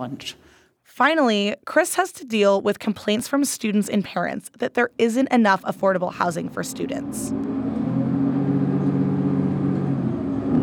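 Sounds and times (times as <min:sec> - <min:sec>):
speech: 0:00.0 - 0:07.6
city bus engine drone: 0:06.5 - 0:10.6
road rumble inside a moving city bus: 0:06.7 - 0:10.6.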